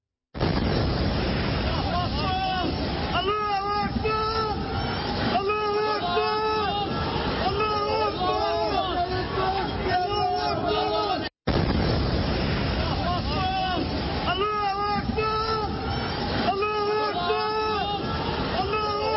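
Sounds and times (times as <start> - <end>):
massive apartment tower in Gaza collapsing after an airstrike: 0.4 - 5.4, 11.5 - 16.5
voices: 1.5 - 11.3, 12.6 - 19.1.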